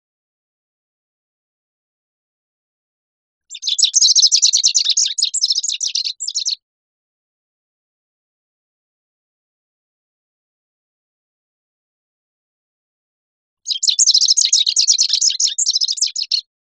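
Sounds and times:
rufous-crowned sparrow giving rapid high jumbled chattering notes: 3.5s - 6.6s, 13.7s - 16.4s.

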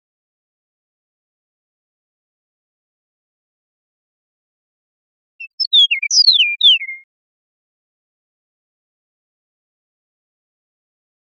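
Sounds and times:
Eastern meadowlark whistling descending slurred notes in Costa Rica: 5.4s - 7.0s.

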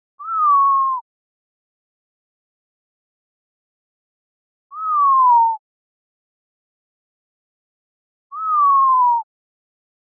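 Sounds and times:
Montezuma quail whistled note: 0.2s - 1.0s, 4.7s - 5.6s, 8.3s - 9.3s.

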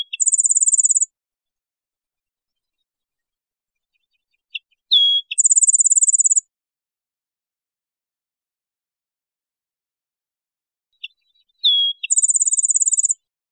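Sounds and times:
Rufous-winged sparrow song with chips, whistle and trill: 0.0s - 1.1s, 2.5s - 6.5s, 10.9s - 13.3s.

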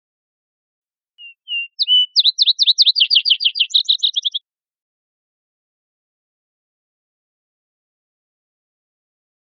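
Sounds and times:
vesper sparrow song: 1.2s - 4.4s.

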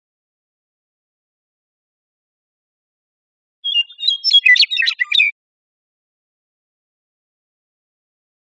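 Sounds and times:
Western meadowlark singing a flutey warbled phrase: 3.6s - 5.4s.

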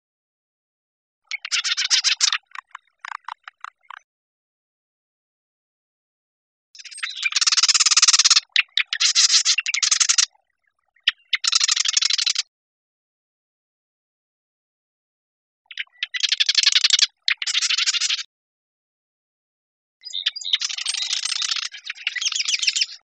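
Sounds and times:
marsh wren giving harsh stuttering rattles: 1.3s - 4.0s, 6.8s - 10.3s, 11.1s - 12.4s, 15.7s - 18.2s, 20.1s - 23.0s.

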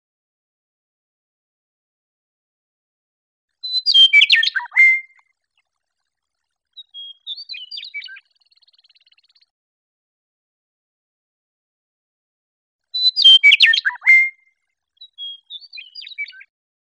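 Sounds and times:
Western meadowlark singing loud flute-like phrases and softer warbled phrases: 3.6s - 5.2s, 6.8s - 8.2s, 13.0s - 16.5s.

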